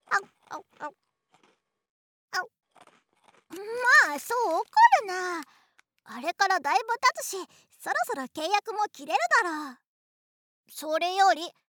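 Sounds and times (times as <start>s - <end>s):
crackly chewing: 0.0s - 6.1s
teeth biting into a hard-baked rice cracker: 0.3s - 1.7s, 2.6s - 6.0s
speech: 4.2s - 9.8s, 10.7s - 11.6s.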